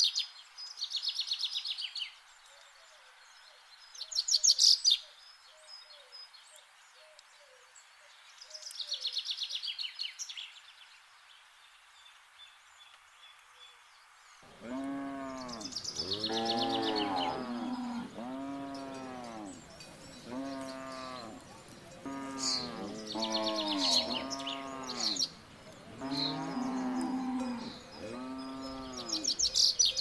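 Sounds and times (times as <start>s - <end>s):
birds chirping: 0.0s - 29.9s
cows mooing: 14.5s - 25.2s, 25.9s - 29.3s.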